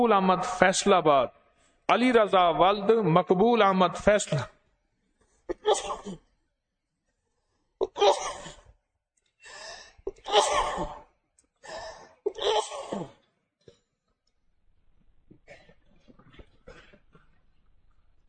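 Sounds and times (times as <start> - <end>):
speech: 0.0 - 4.6, 5.6 - 6.2, 7.9 - 8.4, 12.4 - 13.2
person sneezing: 5.5 - 6.2, 10.1 - 11.0, 12.3 - 13.2.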